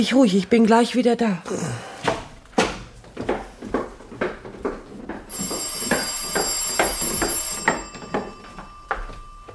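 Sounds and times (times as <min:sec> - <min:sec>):
speech: 0:00.0 - 0:01.9
rhythmic footsteps or thuds: 0:02.0 - 0:09.5
telephone ringing with a bright electronic tone: 0:05.3 - 0:09.5.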